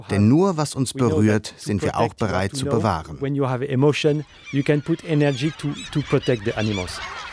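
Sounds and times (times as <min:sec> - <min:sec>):
speech: 0:00.0 - 0:07.2
flock of gulls squawking: 0:01.8 - 0:07.3
flock of crows cawing: 0:04.1 - 0:07.3.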